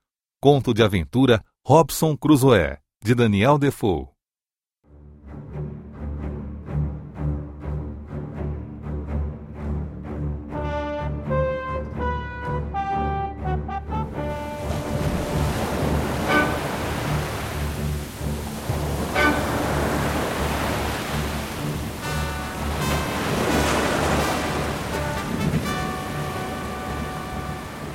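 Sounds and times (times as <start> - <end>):
speech: 0.4 - 4.1
sustained tonal music: 4.9 - 27.9
ocean surf roaring and crashing: 14.0 - 27.9.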